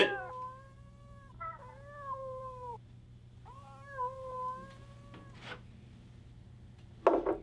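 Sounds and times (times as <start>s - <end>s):
kittens meowing inside a sack: 0.0s - 2.8s, 3.4s - 5.6s.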